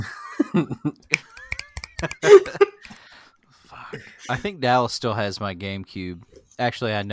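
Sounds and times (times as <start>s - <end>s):
laughter: 0.0s - 2.8s
speech: 0.5s - 1.2s, 4.3s - 7.1s
finger snaps: 1.1s - 3.0s.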